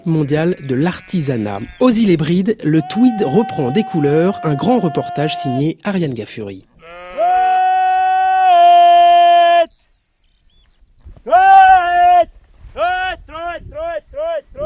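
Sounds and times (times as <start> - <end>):
faint wind: 0.0 - 4.9, 5.7 - 14.6
speech: 0.0 - 7.0
sheep farmer calling his sheep in Gaelic in the pastures: 0.0 - 9.8, 11.2 - 14.6.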